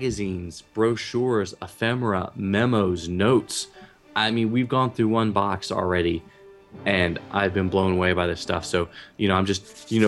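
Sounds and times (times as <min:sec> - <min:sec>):
speech: 0:00.0 - 0:10.0
hands rubbing together: 0:09.5 - 0:10.0.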